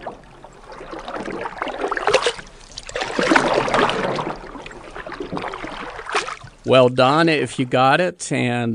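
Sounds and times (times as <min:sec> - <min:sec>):
canoe paddles dipping and pulling through water: 0:00.0 - 0:06.9
speech: 0:06.7 - 0:08.7.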